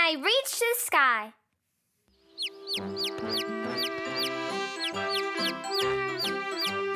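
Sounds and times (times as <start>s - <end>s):
speech: 0.1s - 1.4s
baby chicks chirping while being fed: 2.2s - 6.8s.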